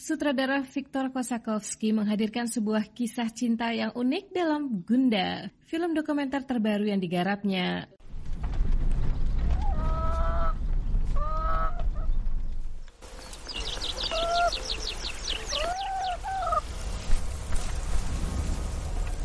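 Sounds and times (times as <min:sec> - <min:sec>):
speech: 0:00.0 - 0:08.0
steady low rumble: 0:08.0 - 0:19.2
chickens clucking and squawking in a farmyard: 0:11.2 - 0:12.1, 0:13.2 - 0:16.7.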